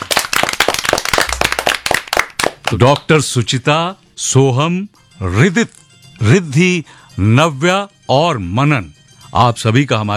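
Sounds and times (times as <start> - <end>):
applause from a small group of guests in a studio: 0.0 - 2.8
speech: 2.7 - 10.1.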